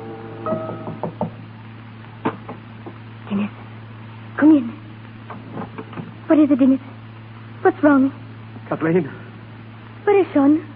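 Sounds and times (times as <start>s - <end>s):
steady low hum: 0.0s - 10.7s
soft knocking on a door: 0.5s - 1.4s
speech: 6.4s - 6.9s, 7.6s - 9.2s, 10.0s - 10.7s.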